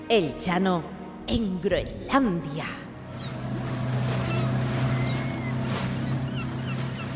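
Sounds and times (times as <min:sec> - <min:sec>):
speech: 0:00.1 - 0:02.9
motorboat engine droning: 0:02.8 - 0:07.1
wind: 0:03.0 - 0:07.1
rushing water from waves: 0:03.1 - 0:07.1.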